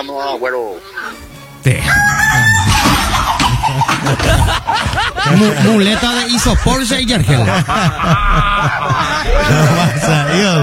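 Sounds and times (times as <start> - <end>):
speech: 0.0 - 2.6, 3.9 - 10.6
chickens clucking on a farm: 0.7 - 10.4
rooster crowing: 1.8 - 3.4
laughter: 2.2 - 10.6.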